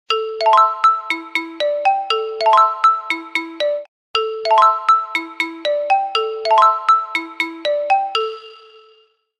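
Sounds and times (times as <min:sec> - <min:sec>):
Doov A8 phone ringtone: 0:00.1 - 0:09.3.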